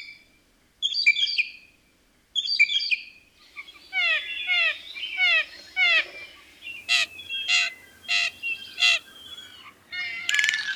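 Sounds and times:
blue jay calls: 2.6 - 10.7.

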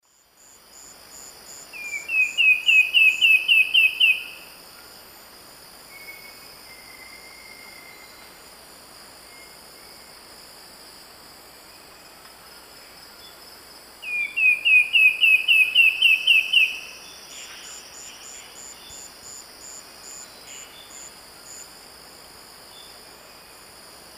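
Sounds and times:
Myrmeciza fortis song in the Eastern Lowlands of South America: 1.7 - 4.4, 5.9 - 8.4, 14.0 - 19.1, 20.1 - 21.1.

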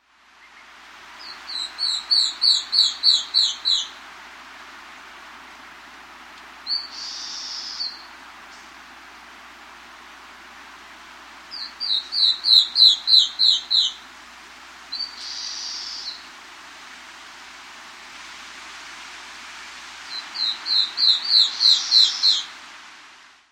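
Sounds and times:
Star-throated antwren calling in South America: 0.4 - 4.0, 6.7 - 8.1, 11.5 - 14.1, 14.9 - 16.3, 20.0 - 22.5.

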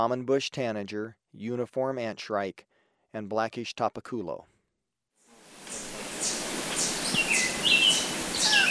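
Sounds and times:
speech: 0.0 - 4.5
bar-winged wood-wren song recorded in Ecuador: 5.5 - 8.7.

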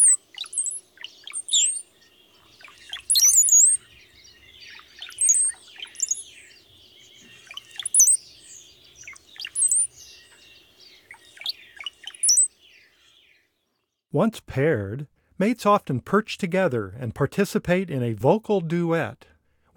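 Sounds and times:
brown-headed cowbird singing: 0.0 - 13.4
speech: 14.2 - 19.7.

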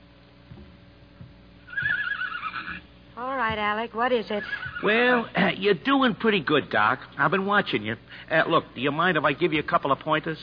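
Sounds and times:
horse hoof thuds in an ambulance shed: 0.4 - 2.8, 4.5 - 4.8
horse whinnying in an ambulance shed: 1.7 - 2.9, 4.3 - 5.3
speech: 3.2 - 10.4.

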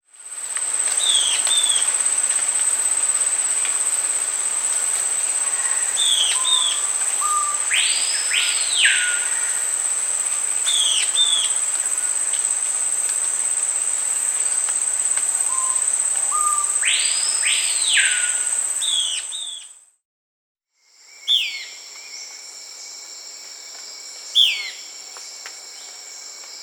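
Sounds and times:
Euler's Flycatcher Lathrotriccus calling in South America: 1.0 - 19.7, 21.2 - 22.3, 24.3 - 24.9.

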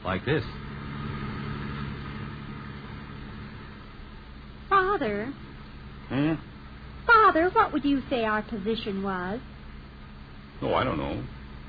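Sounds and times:
speech: 0.0 - 0.6, 5.0 - 5.5, 6.1 - 6.5, 7.2 - 9.5, 10.6 - 11.4
car engine rumble driving in busy traffic: 0.0 - 6.8
broadband road noise: 0.0 - 7.8.

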